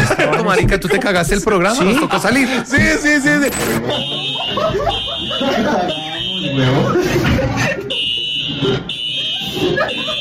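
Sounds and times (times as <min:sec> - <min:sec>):
several people talking and laughing: 0:00.0 - 0:10.1
speech: 0:00.4 - 0:10.1
fire alarm ringing in high-pitched electronic pulses: 0:03.8 - 0:07.0, 0:07.8 - 0:10.1.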